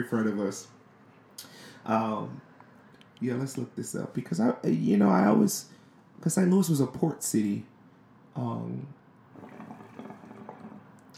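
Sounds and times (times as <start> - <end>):
speech: 0.0 - 0.8, 1.8 - 2.5, 3.2 - 7.7, 8.4 - 9.5
hookah water bubbling: 9.3 - 11.1.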